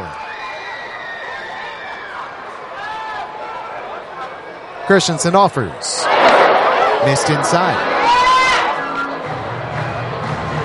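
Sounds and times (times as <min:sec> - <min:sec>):
crowd cheer in a ballpark: 0:00.0 - 0:10.6
speech: 0:04.9 - 0:08.4
baseball stadium crowd murmuring: 0:05.2 - 0:10.6.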